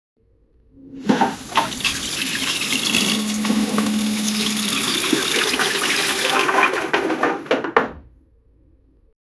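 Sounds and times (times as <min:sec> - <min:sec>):
dishwashing in a kitchen: 0:00.9 - 0:08.0.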